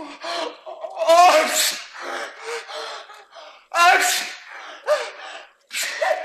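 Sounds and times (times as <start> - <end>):
person imitating a man's fit of sneezes: 0.9 - 2.0, 3.8 - 5.1, 5.7 - 6.2.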